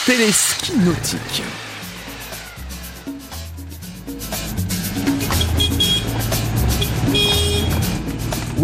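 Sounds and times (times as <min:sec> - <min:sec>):
speech: 0:00.0 - 0:01.7
road noise: 0:00.0 - 0:08.6
Citroën 2CV engine droning on a village road in the Somme: 0:00.5 - 0:08.6
Citroën 2CV horn toot: 0:05.3 - 0:08.0.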